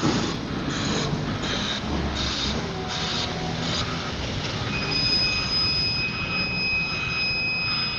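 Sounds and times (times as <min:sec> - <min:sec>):
train rumbling past: 0:00.0 - 0:05.5
train wheel metallic squeal: 0:02.3 - 0:07.9.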